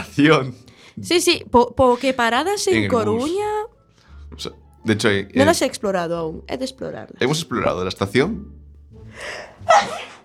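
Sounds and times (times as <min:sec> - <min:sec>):
speech: 0:00.2 - 0:03.7, 0:04.3 - 0:08.6, 0:09.2 - 0:10.1
sneeze: 0:09.7 - 0:10.2.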